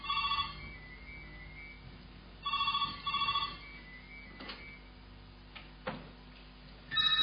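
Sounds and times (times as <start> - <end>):
telephone ringing with electronic trill: 0.0 - 1.8, 2.4 - 4.8, 6.9 - 7.2.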